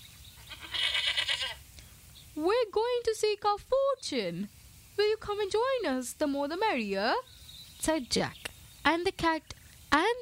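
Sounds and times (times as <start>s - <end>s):
billy goat bleating: 0.4s - 1.6s
speech: 3.0s - 10.1s.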